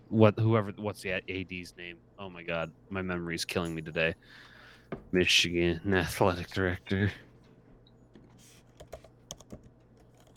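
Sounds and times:
speech: 0:00.1 - 0:07.3
typing on a computer keyboard: 0:08.7 - 0:10.3.

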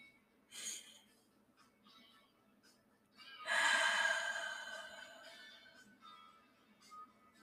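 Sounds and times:
deep breath in and out: 0:03.5 - 0:05.8.

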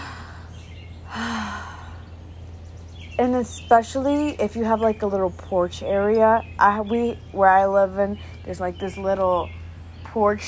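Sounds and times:
deep breath with airy exhale: 0:00.0 - 0:02.1
speech: 0:03.2 - 0:10.4.

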